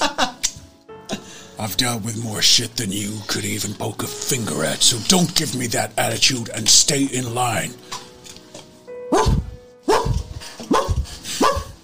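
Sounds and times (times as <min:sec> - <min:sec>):
speech: 0:01.6 - 0:08.0
dog barking behind a closed door: 0:09.1 - 0:11.8.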